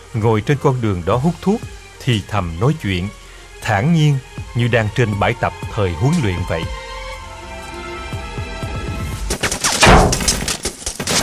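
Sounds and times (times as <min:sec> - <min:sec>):
speech: 0:00.1 - 0:06.8
wartime gunfire raking a road with flat-trajectory rounds: 0:09.3 - 0:11.2.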